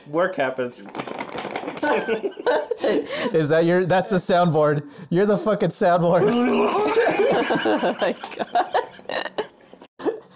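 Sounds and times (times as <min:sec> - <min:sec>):
speech: 0:00.0 - 0:08.7
paper rustling and crinkling: 0:00.8 - 0:02.1
laughter: 0:01.8 - 0:03.3, 0:06.2 - 0:09.5.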